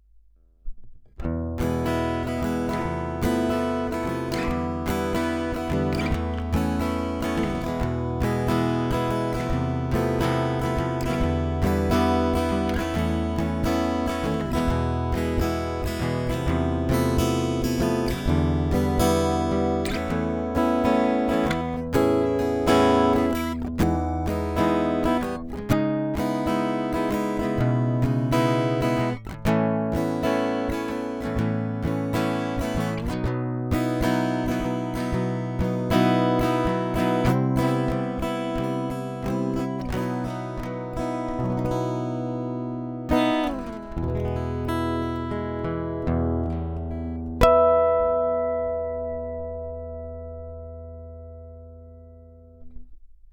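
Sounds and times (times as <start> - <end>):
Harley Benton GS-Travel-E mahogany travel guitar: 0.6 - 53.3.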